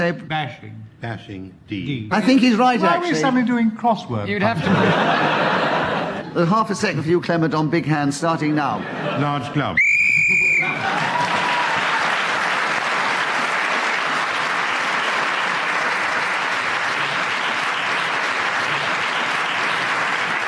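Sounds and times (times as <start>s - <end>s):
speech: 0.0s - 5.7s, 6.3s - 9.8s
laughter: 2.1s - 3.2s, 4.3s - 7.2s, 8.4s - 12.1s, 16.6s - 20.4s
shrill whistle blast ending a round of a game: 9.8s - 10.8s
audience applause: 10.2s - 20.4s.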